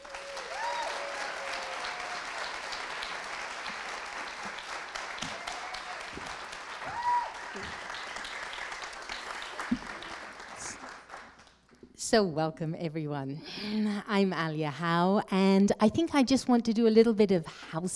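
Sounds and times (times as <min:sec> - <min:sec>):
faint voices and whoops: 0:00.0 - 0:02.7, 0:05.2 - 0:07.8
crowd applause: 0:00.0 - 0:11.5
speech: 0:12.1 - 0:17.9.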